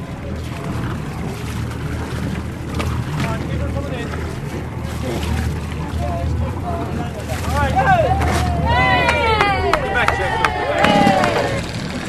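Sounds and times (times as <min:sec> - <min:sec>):
ferry engine rumbling while docking: 0:00.0 - 0:12.0
gusting wind: 0:00.0 - 0:12.0
water lapping: 0:00.0 - 0:12.0
people calling out and shouting at the harbour: 0:07.7 - 0:11.7.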